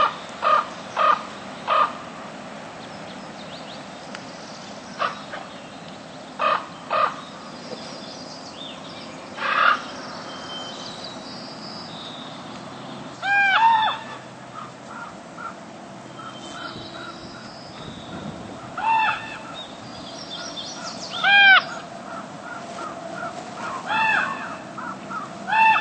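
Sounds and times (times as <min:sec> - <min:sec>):
common raven calling: 0:00.0 - 0:02.1, 0:05.0 - 0:05.5, 0:06.4 - 0:07.5, 0:09.4 - 0:11.0, 0:13.2 - 0:25.8.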